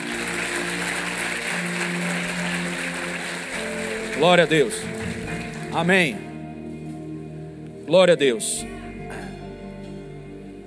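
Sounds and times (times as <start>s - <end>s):
audience applause: 0.0s - 6.2s
speech: 4.2s - 4.9s, 5.7s - 6.2s, 7.9s - 8.8s.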